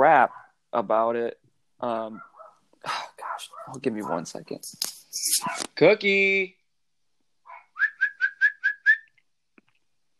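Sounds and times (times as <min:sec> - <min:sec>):
speech: 0:00.2 - 0:03.0, 0:03.7 - 0:06.6
person whistling to call a pet: 0:07.8 - 0:09.1.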